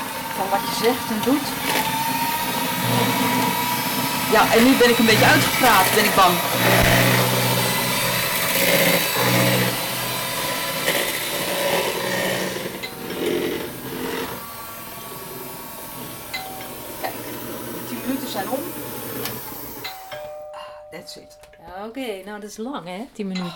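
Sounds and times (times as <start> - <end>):
electric mixer whipping eggs into foam: 0.0 - 20.5
speech: 0.4 - 1.8, 2.9 - 3.4, 4.3 - 7.3, 22.0 - 23.5.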